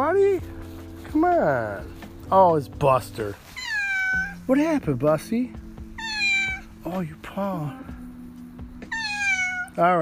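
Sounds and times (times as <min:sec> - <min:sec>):
speech: 0:00.2 - 0:03.6, 0:04.5 - 0:05.6, 0:06.8 - 0:07.9, 0:09.8 - 0:10.0
cat meowing: 0:03.5 - 0:04.4, 0:05.9 - 0:06.8, 0:08.8 - 0:09.8.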